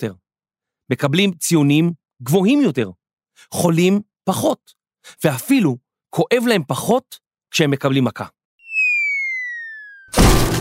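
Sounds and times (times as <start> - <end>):
speech: 0.0 - 0.2, 0.9 - 8.4
cartoon falling whistle: 8.6 - 10.4
loud crash of a piano landing: 10.1 - 10.6.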